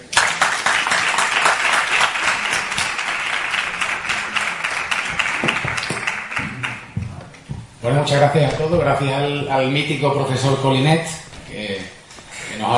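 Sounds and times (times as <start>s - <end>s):
audience applause: 0.0s - 7.0s
speech: 7.9s - 11.7s.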